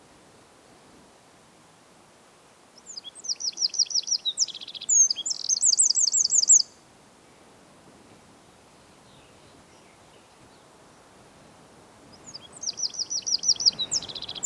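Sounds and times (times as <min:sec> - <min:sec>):
background hiss: 0:00.0 - 0:14.4
Eurasian wren Troglodytes troglodytes singing a fast high-pitched trilled phrase: 0:02.9 - 0:06.7, 0:12.2 - 0:14.4.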